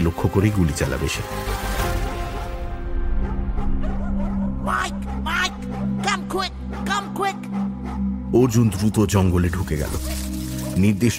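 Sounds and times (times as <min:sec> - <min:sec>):
speech: 0:00.0 - 0:01.9, 0:08.3 - 0:10.2, 0:10.8 - 0:11.1
dog barking and yipping: 0:03.1 - 0:08.2.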